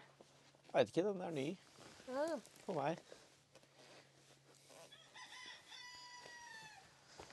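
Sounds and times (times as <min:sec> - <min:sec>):
speech: 0:00.7 - 0:03.2
rooster crowing: 0:04.9 - 0:06.9.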